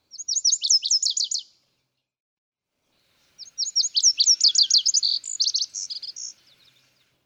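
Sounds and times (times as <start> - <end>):
Lazuli Bunting singing: 0.0 - 1.6, 3.4 - 7.2.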